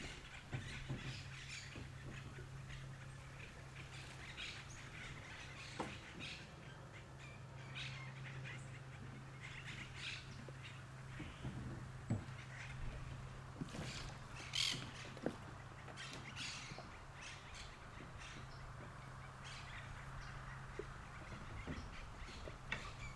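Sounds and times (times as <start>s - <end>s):
birds squawking and calling in the river delta: 0.0s - 23.1s
steady low motor-like hum: 0.0s - 23.1s.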